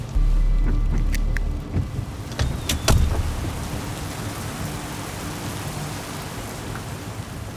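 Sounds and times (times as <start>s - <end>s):
low rumble: 0.1s - 3.5s
steady rain with drops striking a surface: 0.1s - 7.5s.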